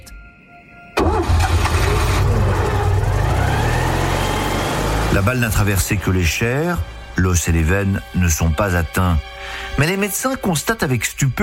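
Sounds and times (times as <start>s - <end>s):
car engine cranking, starting and idling: 1.0s - 8.2s
speech: 5.2s - 11.4s.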